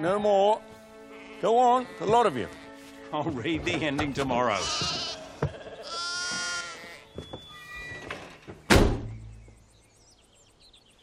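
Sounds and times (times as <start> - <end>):
speech: 0.0 - 0.7, 1.4 - 5.0
sheep bleating: 1.0 - 2.9, 4.4 - 7.2
heavy door-like thud: 8.0 - 9.3.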